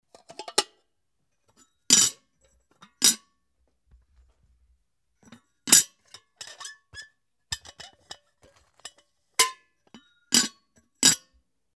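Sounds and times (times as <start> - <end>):
kettle: 5.2 - 10.5.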